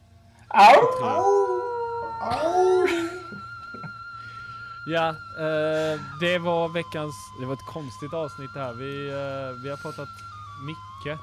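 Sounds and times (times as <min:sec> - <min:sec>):
speech: 0:00.5 - 0:01.6, 0:02.2 - 0:03.1, 0:04.9 - 0:11.2
three people howling together like wolves: 0:00.5 - 0:03.9.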